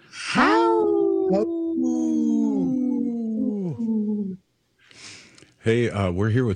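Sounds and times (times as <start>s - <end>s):
man imitating a wolf howl as a radio tag: 0.1s - 4.4s
speech: 1.3s - 1.6s, 5.6s - 6.5s.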